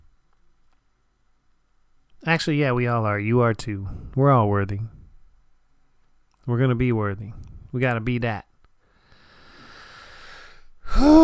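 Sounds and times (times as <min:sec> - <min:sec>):
speech: 0:02.2 - 0:05.0, 0:06.4 - 0:08.5, 0:10.9 - 0:11.2
big breath drawn in close to a microphone: 0:08.8 - 0:11.0.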